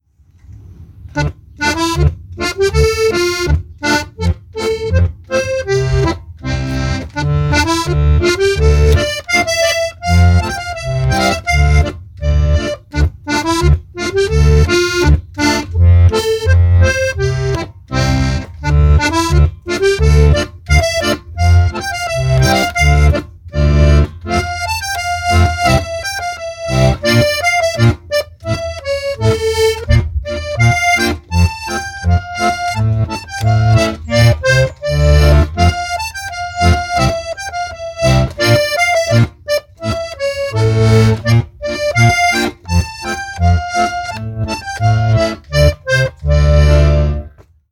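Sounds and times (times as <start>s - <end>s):
solo harmonica: 1.6s - 47.4s.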